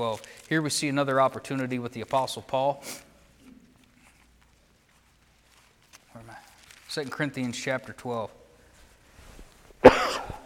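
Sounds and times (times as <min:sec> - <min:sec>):
speech: 0:00.0 - 0:03.1, 0:06.2 - 0:08.4
sharp raspy cough: 0:09.8 - 0:10.4.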